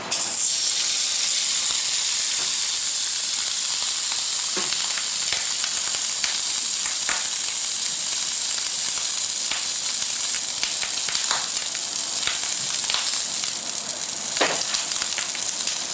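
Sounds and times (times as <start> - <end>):
pork belly sizzling on a hot flat plancha griddle with browned butter: 0.1 - 15.9
sharp pops and crackles of pork rind crisping: 3.4 - 15.9.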